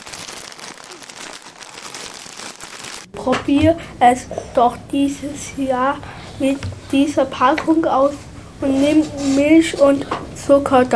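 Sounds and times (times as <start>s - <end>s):
plastic bag of rice crinkling and rustling: 0.0s - 3.1s
speech: 3.2s - 10.9s.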